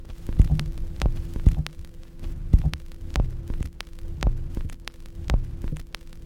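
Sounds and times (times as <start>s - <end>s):
old record sound: 0.0s - 6.2s.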